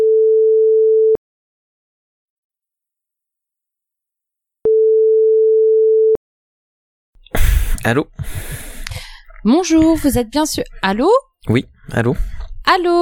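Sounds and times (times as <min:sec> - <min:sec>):
telephone line tone after dialing a number: 0:00.0 - 0:01.2, 0:04.7 - 0:06.2
speech: 0:07.8 - 0:08.7, 0:09.4 - 0:13.0.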